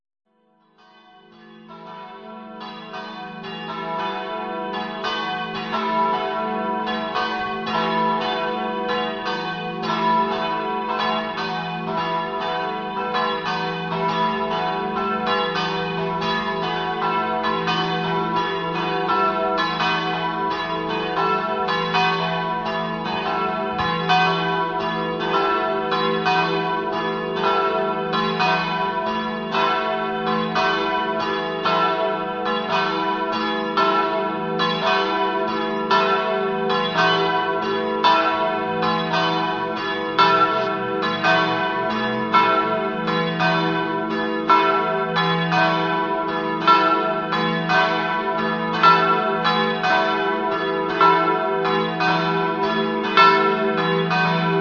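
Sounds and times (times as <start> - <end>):
bells ringing in Risano: 0.9 - 54.5.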